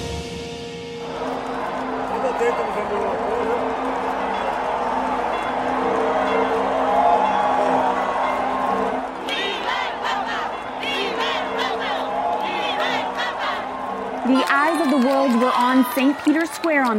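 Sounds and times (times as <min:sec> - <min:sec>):
large crowd cheering in a public square: 0:00.9 - 0:16.9
speech: 0:02.4 - 0:04.0, 0:15.8 - 0:16.9
people shouting in a crowd: 0:09.3 - 0:16.9.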